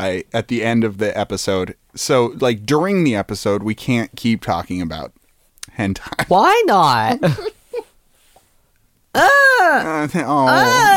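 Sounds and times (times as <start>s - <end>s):
speech: 0.0s - 5.2s, 5.8s - 7.6s, 9.2s - 10.9s
fussy baby crying: 10.5s - 10.9s.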